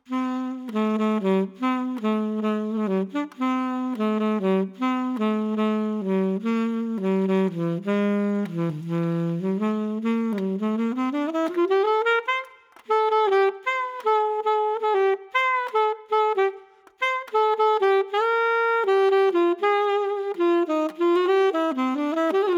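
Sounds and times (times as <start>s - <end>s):
Selmer alto saxophone without pads: 0.0s - 22.5s.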